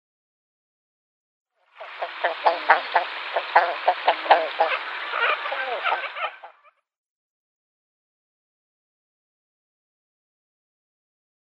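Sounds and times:
female King Eider calling: 1.8 - 6.7.

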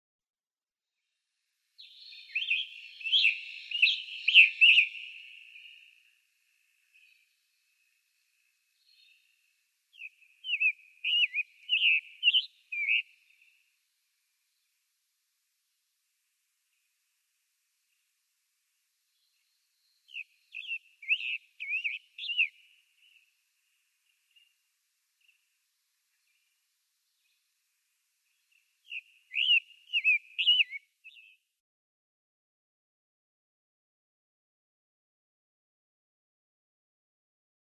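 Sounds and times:
Summer Tanager singing: 1.8 - 14.8, 19.1 - 27.5, 28.2 - 31.5.

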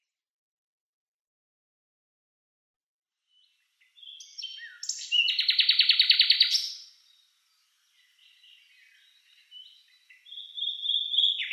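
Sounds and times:
common nightingale song: 3.2 - 11.5.

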